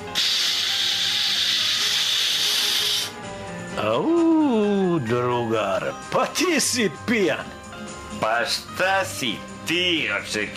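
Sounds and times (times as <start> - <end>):
blowing into a breathalyzer: 0.0 - 3.2
speech: 3.8 - 7.6, 8.2 - 10.5.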